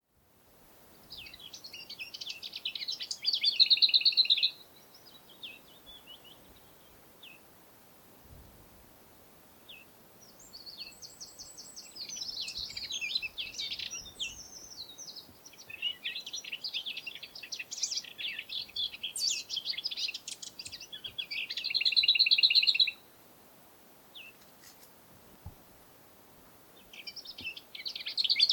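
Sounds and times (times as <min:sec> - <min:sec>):
lesser whitethroat Curruca curruca singing: 0:01.0 - 0:07.4, 0:09.6 - 0:23.1, 0:26.8 - 0:28.5.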